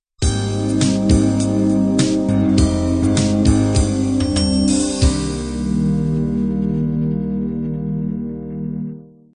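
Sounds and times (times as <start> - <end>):
beat ending: 0.2 - 8.8.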